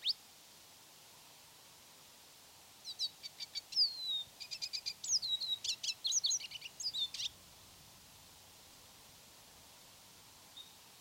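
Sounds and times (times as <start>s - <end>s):
lesser goldfinch song: 2.8s - 7.4s.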